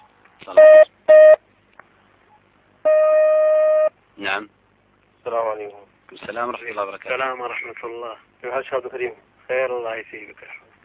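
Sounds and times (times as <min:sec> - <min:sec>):
speech: 0:00.5 - 0:00.7, 0:04.2 - 0:04.6, 0:05.2 - 0:10.6
short electronic telephone beeps while dialing: 0:00.6 - 0:01.4, 0:02.9 - 0:03.9
steady telephone tone while call connects: 0:02.9 - 0:03.9.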